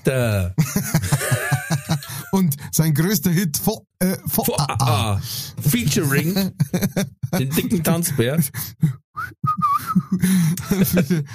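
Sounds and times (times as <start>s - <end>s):
speech: 0.0s - 1.0s, 2.3s - 11.3s
people laughing: 0.6s - 2.5s, 4.6s - 8.6s, 9.6s - 11.3s
person whistling a short wavering tune: 9.2s - 10.2s.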